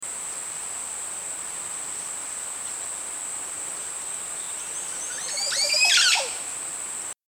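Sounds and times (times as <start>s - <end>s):
oropendola bird chirp: 1.8s - 6.9s.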